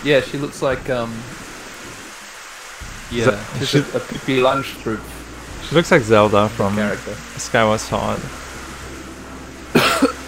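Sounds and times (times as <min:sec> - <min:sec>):
speech: 0:00.0 - 0:01.4, 0:03.1 - 0:08.4
quiet room hiss: 0:00.0 - 0:10.2
single loud cough: 0:09.8 - 0:10.2.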